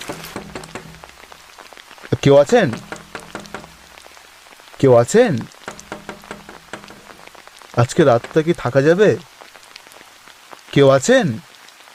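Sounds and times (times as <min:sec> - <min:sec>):
sharp regular knocks: 0:00.0 - 0:01.5, 0:02.5 - 0:04.2, 0:05.6 - 0:08.7
heavy rain falling: 0:00.0 - 0:11.9
speech: 0:02.2 - 0:02.9, 0:04.8 - 0:05.5, 0:07.8 - 0:09.3, 0:10.8 - 0:11.5.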